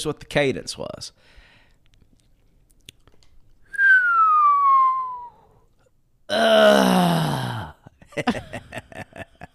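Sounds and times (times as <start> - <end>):
speech: 0.0 - 1.4, 6.3 - 7.3, 8.2 - 9.3
voice imitating a descending whistle: 3.7 - 5.6
voice making a rough guttural growl: 6.3 - 7.8.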